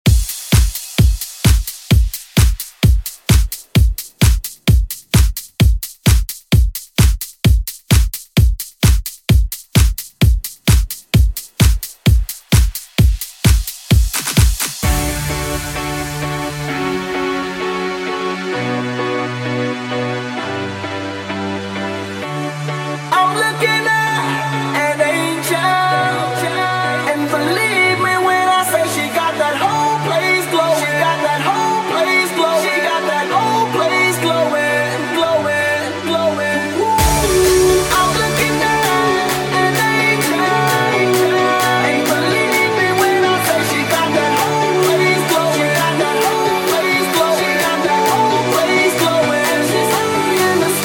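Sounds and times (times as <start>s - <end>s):
pop music snippets: 0.0s - 50.8s.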